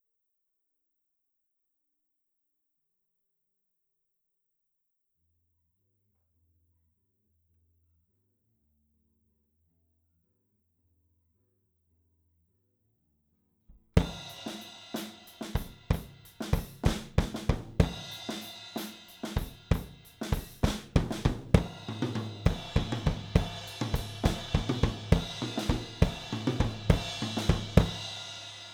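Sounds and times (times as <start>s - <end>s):
drums recorded with AKG414 microphone: 13.7s - 28.7s.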